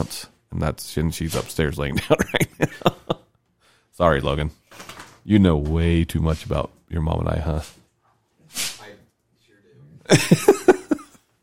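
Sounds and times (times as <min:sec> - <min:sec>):
speech: 0:00.0 - 0:02.9, 0:04.0 - 0:07.8, 0:10.1 - 0:10.6
laughter: 0:01.9 - 0:03.3, 0:10.1 - 0:11.2
sneeze: 0:08.5 - 0:08.9.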